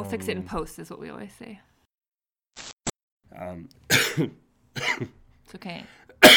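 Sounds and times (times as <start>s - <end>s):
speech: 0.0s - 1.7s, 3.3s - 6.3s
person coughing: 3.9s - 5.1s, 6.2s - 6.3s.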